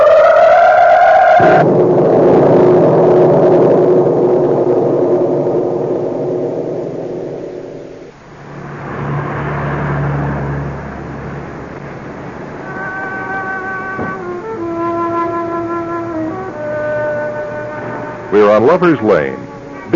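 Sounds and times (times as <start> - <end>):
road noise on a busy big-city street: 0.0 - 19.9
whining city bus engine pulling through: 0.0 - 19.9
city bus engine rumble on a busy big-city street: 8.1 - 19.9
speech: 18.7 - 19.9.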